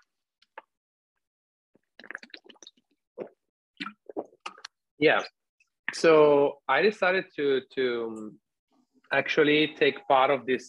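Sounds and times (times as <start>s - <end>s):
person drinking water: 1.8s - 4.8s
speech: 5.0s - 8.4s, 9.1s - 10.6s.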